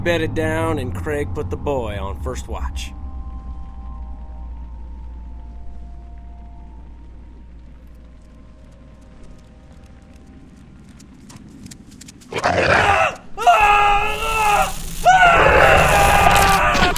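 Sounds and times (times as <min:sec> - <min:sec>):
speech: 0:00.0 - 0:03.0
low rumbling hum: 0:00.0 - 0:16.9
harsh wavering screams: 0:12.3 - 0:16.9.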